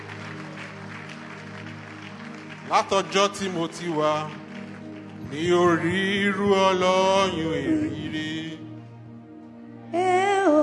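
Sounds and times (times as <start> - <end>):
crowd clapping: 0.0 - 8.4
sustained keyboard or organ drone: 1.3 - 9.6
speech: 2.7 - 4.4, 5.3 - 8.6.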